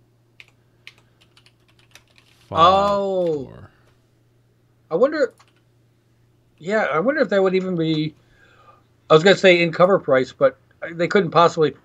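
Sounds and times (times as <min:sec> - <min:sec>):
soft irregular computer keyboard taps and clicks: 0:00.4 - 0:03.3, 0:05.3 - 0:05.6
speech: 0:02.5 - 0:03.7, 0:04.9 - 0:05.4, 0:06.6 - 0:08.2, 0:09.1 - 0:11.8
loud burst of a person's voice: 0:02.5 - 0:03.8.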